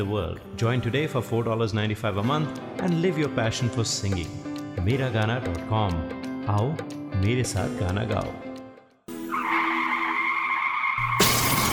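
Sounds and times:
speech: 0.0s - 8.5s
car tires squealing in a skid: 9.2s - 11.7s
car crashing: 9.5s - 11.7s
glass shattering: 11.1s - 11.7s.

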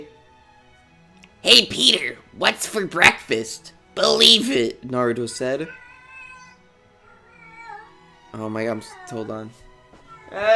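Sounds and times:
speech: 1.4s - 5.8s, 8.4s - 9.6s, 10.3s - 10.5s
female pet cat meowing: 5.4s - 8.0s, 8.8s - 9.4s, 10.0s - 10.5s.

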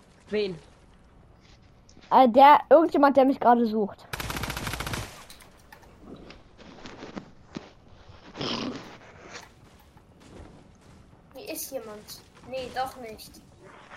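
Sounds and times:
speech: 0.3s - 0.7s, 2.1s - 4.1s, 12.5s - 13.5s
digging with sharp scraping impacts: 6.6s - 13.9s.

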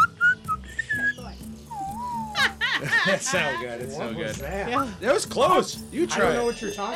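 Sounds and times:
person whistling a wavering tune imitating a mournful sad horn: 0.0s - 2.4s
laughter: 2.2s - 4.9s
speech: 2.8s - 6.9s.

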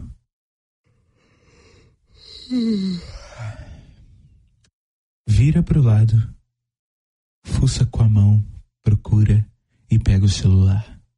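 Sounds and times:
person yawning with a soft groan: 2.2s - 4.0s
speech: 2.5s - 3.2s, 5.4s - 6.4s, 7.6s - 11.0s.

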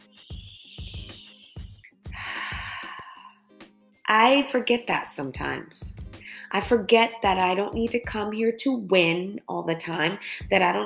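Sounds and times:
steady pulsing rhythm of low tonal beats: 0.2s - 2.2s
deep inhaled breath: 1.1s - 3.5s, 6.2s - 6.5s
speech: 4.1s - 10.8s.

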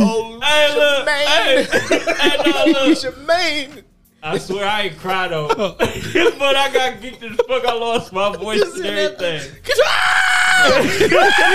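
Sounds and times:
speech: 0.0s - 11.5s
laughter: 0.5s - 9.9s, 10.6s - 11.5s
excited high-pitched screaming: 9.7s - 11.5s.

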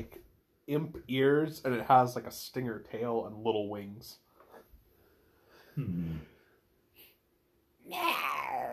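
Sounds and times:
speech: 0.0s - 4.2s, 5.8s - 6.3s
person imitating a loud breathy hiss: 5.8s - 6.2s
person imitating a low throaty meow-like call of a cat-like creature: 7.8s - 8.7s.

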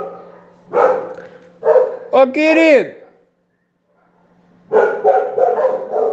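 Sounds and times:
dog barking at a home that keeps many dogs: 0.0s - 2.2s, 3.9s - 6.1s
speech: 2.2s - 3.0s.

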